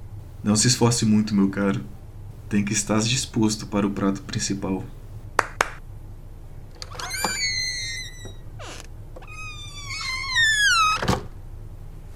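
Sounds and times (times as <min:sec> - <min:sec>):
speech: 0:00.4 - 0:05.0
door hinge squealing creak: 0:06.8 - 0:11.3.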